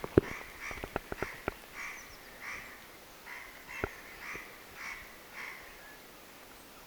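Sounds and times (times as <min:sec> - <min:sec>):
spotted nutcracker harsh rasping calls: 0:00.0 - 0:06.1.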